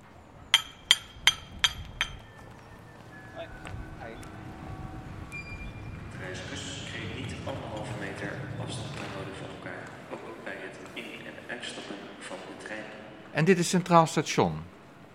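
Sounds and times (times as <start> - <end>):
steady outdoor street background: 0.0 - 15.1
street paver's hammer tapping paving stones: 0.5 - 2.8
speech: 13.4 - 14.7.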